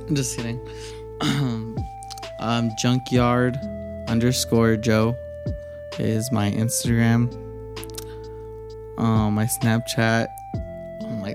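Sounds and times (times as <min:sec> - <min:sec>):
speech: 0:00.1 - 0:01.7, 0:02.4 - 0:05.2, 0:05.9 - 0:07.4, 0:09.0 - 0:10.4
person clearing throat: 0:01.2 - 0:01.8.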